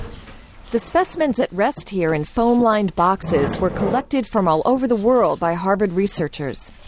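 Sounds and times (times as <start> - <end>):
speech: 0.7 - 6.8
wooden cabinet drawer sliding open in an insect specimen collection room: 3.2 - 4.0.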